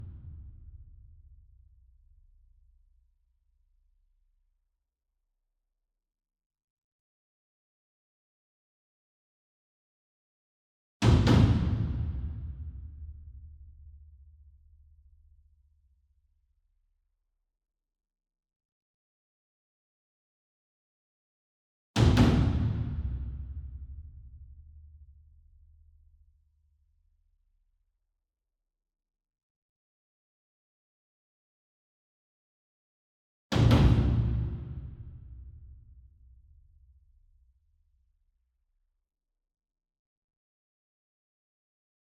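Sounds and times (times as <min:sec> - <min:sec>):
single 60 inch taiko drum hit with double hard beater: 0:11.1 - 0:12.7, 0:22.0 - 0:24.0, 0:33.5 - 0:35.3.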